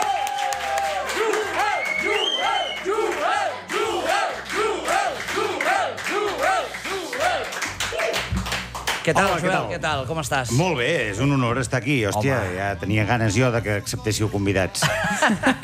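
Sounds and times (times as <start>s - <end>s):
loud audience cheering and whooping: 0.0s - 8.2s
audience applause and clapping: 0.0s - 9.5s
speech: 9.0s - 15.6s
laughter: 14.8s - 15.6s.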